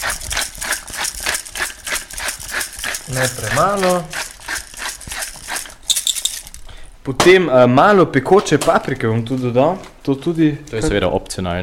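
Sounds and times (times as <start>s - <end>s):
pepper mill grinding fresh black pepper: 0.0s - 6.7s
speech: 3.1s - 4.2s, 7.1s - 11.6s.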